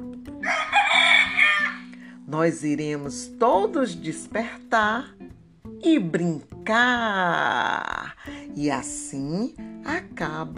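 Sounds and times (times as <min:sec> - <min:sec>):
rooster crowing at sunrise: 0:00.4 - 0:01.9
speech: 0:02.3 - 0:05.2, 0:05.8 - 0:10.5.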